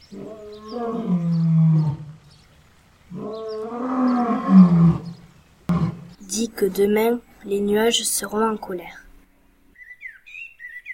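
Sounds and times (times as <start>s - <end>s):
speech: 0.1s - 1.2s, 6.6s - 9.0s
lion roaring with deep rumbling growl: 0.1s - 2.2s, 3.1s - 6.2s.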